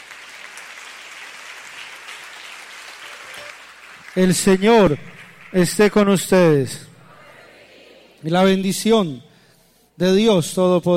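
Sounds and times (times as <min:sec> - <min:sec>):
crowd applauding: 0:00.0 - 0:06.5
speech: 0:04.2 - 0:06.9, 0:08.2 - 0:09.3, 0:10.0 - 0:10.9.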